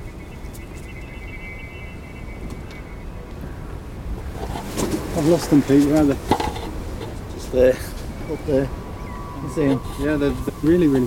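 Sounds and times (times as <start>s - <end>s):
faint thin whistle from pigeons carrying whistles: 0.0s - 3.1s, 9.0s - 11.0s
wind gusting across the microphone outdoors: 0.0s - 11.0s
speech: 5.2s - 6.6s, 7.5s - 8.8s, 9.4s - 11.0s.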